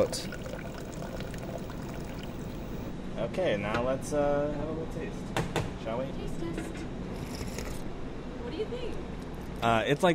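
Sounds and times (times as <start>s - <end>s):
speech: 0.0s - 0.4s, 3.2s - 6.9s, 8.6s - 10.1s
cold water pouring into a pot of simmered coffee and egg: 0.0s - 2.9s.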